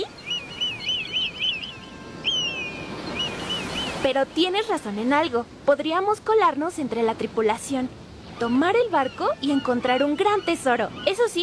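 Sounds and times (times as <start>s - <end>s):
eagle calling: 0.0s - 4.1s, 8.3s - 11.4s
speech: 4.0s - 11.4s.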